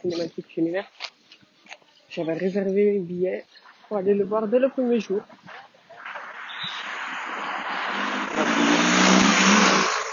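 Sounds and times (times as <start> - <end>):
speech: 0.0 - 1.1, 2.1 - 5.5
large police motorcycle engines rumbling past: 6.6 - 10.1.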